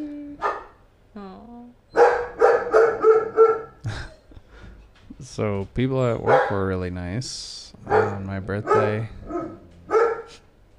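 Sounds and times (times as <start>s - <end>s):
female dog barking at people pacing out front: 0.4s - 0.8s, 2.0s - 3.8s, 6.2s - 6.7s, 7.8s - 10.4s
speech: 5.4s - 9.2s.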